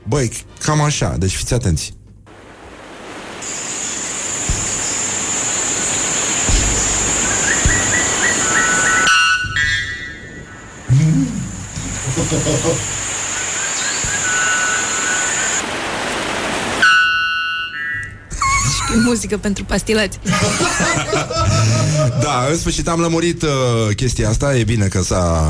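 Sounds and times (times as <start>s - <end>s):
constant roar of rushing outdoor noise: 0.0s - 24.7s
speech: 0.1s - 2.0s, 19.3s - 25.4s
loud ringing calls of the world's loudest bird: 3.5s - 15.6s
laughter: 10.9s - 13.0s, 20.2s - 22.6s.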